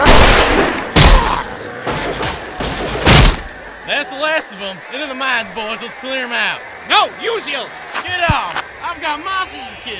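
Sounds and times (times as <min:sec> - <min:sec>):
gunshots aimed at undead shamblers near a mine: 0:00.0 - 0:03.6
speech: 0:04.4 - 0:09.9.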